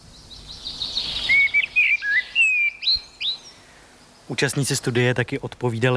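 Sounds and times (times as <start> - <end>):
common blackbird singing: 0.0 - 4.8
speech: 4.3 - 5.9.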